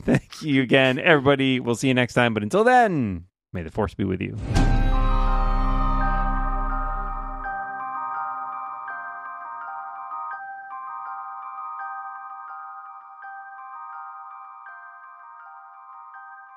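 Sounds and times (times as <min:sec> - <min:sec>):
speech: 0:00.0 - 0:04.8
phone ringtone electronic melody: 0:04.7 - 0:16.5.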